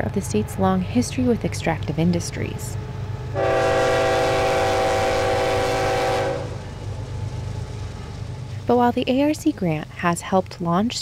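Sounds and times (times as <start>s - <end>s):
speech: 0.0s - 3.5s, 8.7s - 11.0s
coal train passing alongside a farm: 0.0s - 11.0s
train horn blaring: 3.4s - 6.7s.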